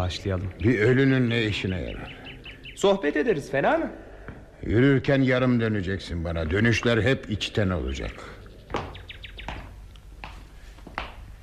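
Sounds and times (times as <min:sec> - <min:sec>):
speech: 0:00.0 - 0:02.2, 0:02.8 - 0:04.0, 0:04.6 - 0:08.8
high bird chirps outdoors: 0:00.4 - 0:03.5, 0:07.9 - 0:09.8
soft footstep taps: 0:04.2 - 0:04.5, 0:08.6 - 0:11.3.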